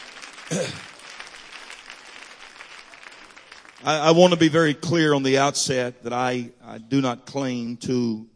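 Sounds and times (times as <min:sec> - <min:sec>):
crowd clapping in a large room: 0:00.0 - 0:05.0
speech: 0:00.5 - 0:00.9, 0:03.8 - 0:08.3.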